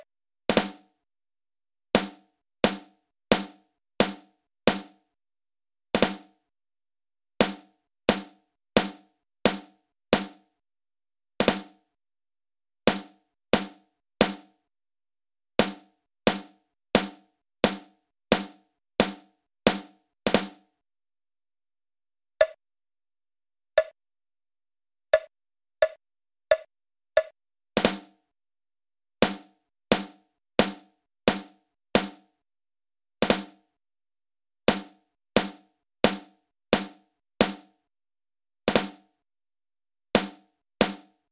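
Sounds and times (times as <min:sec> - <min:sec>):
drums: 0:00.5 - 0:00.9, 0:02.0 - 0:05.0, 0:05.9 - 0:06.4, 0:07.4 - 0:10.5, 0:11.4 - 0:11.8, 0:12.9 - 0:14.5, 0:15.6 - 0:20.7, 0:27.8 - 0:28.1, 0:29.3 - 0:32.3, 0:33.2 - 0:33.6, 0:34.7 - 0:37.7, 0:38.7 - 0:39.0, 0:40.2 - 0:41.1.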